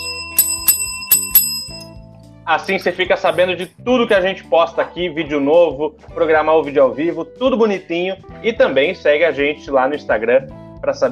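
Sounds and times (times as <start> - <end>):
bright notification bell ringing: 0.0 - 2.0
speech: 2.5 - 11.1.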